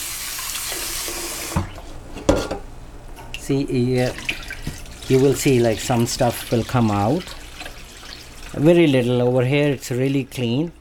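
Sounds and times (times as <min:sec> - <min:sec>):
cold tap water running into a bowl of lentils: 0:00.0 - 0:01.8, 0:03.9 - 0:10.7
speech: 0:03.5 - 0:04.4, 0:05.1 - 0:07.4, 0:08.5 - 0:10.7
lentils sloshing and clunking as they are swirled and washed: 0:03.9 - 0:10.7.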